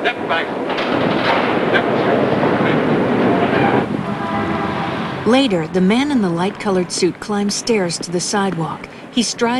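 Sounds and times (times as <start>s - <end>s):
speech: 0.0s - 1.1s, 5.2s - 9.5s
subway train rumbling along the tracks: 0.0s - 9.5s
indistinct voices of commuters: 1.6s - 9.5s.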